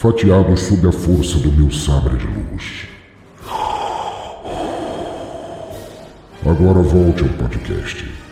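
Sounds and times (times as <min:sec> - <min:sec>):
speech: 0:00.0 - 0:02.9, 0:06.4 - 0:08.2
heavy hissing mechanical respirator breathing: 0:03.4 - 0:06.4.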